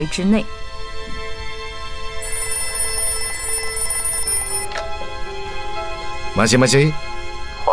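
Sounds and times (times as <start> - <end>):
speech: 0.0 - 0.7, 6.4 - 7.1
telephone ringing: 2.2 - 4.7.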